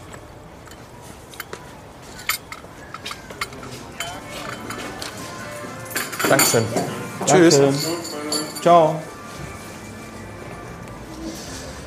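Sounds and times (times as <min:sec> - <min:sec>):
busy murmur of voices: 0:00.9 - 0:11.8
ceramic cup on a saucer clinking as handed back: 0:02.2 - 0:08.9
speech: 0:06.3 - 0:07.9, 0:08.6 - 0:09.1.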